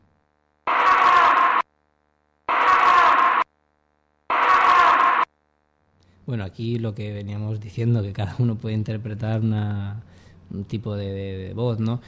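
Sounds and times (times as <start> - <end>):
distorted scream-like female cry in a psychophony recording: 0.7 - 1.6, 2.5 - 3.4, 4.3 - 5.3
speech: 6.3 - 12.0.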